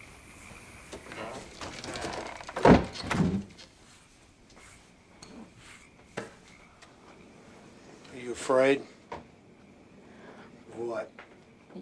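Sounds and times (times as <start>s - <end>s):
door pushed shut with a solid thud: 1.9s - 3.5s
speech: 8.5s - 8.9s.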